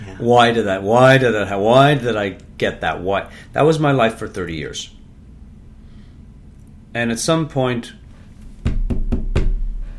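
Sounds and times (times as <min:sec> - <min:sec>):
speech: 0:00.2 - 0:05.0, 0:06.9 - 0:08.0
firm knocks on a door: 0:08.6 - 0:09.8.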